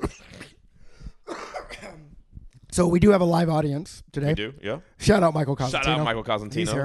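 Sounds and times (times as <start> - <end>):
person coughing: 0.0 - 0.6, 1.2 - 2.2
throat clearing: 0.0 - 0.6, 1.2 - 2.2
speech: 2.8 - 6.8.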